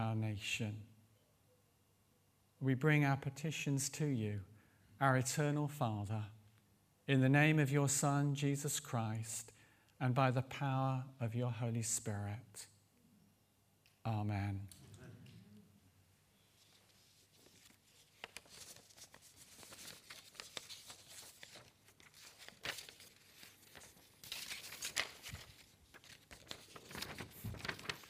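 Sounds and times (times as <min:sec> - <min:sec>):
speech: 0:00.0 - 0:00.9, 0:02.6 - 0:06.4, 0:07.1 - 0:12.7, 0:14.0 - 0:14.8
paper rustling and crinkling: 0:16.5 - 0:28.0.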